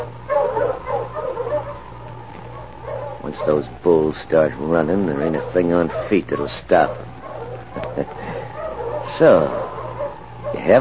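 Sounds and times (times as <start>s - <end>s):
sled dog huskies yelping: 0.0s - 10.7s
sled dog huskies yipping and barking as they are driven: 0.0s - 10.7s
steady low hum: 0.0s - 10.7s
speech: 3.3s - 7.1s, 8.0s - 8.2s, 9.2s - 9.6s, 10.6s - 10.7s.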